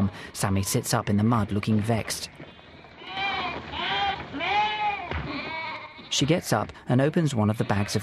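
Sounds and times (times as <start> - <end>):
speech: 0.1 - 2.4, 6.1 - 8.0
sheep bleating: 2.6 - 6.4, 7.2 - 8.0.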